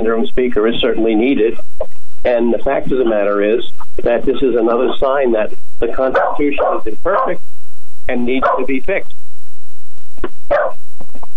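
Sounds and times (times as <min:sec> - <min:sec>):
speech: 0:00.0 - 0:07.4, 0:08.1 - 0:09.2
dog barking: 0:06.1 - 0:07.4, 0:08.4 - 0:08.7, 0:10.5 - 0:10.8.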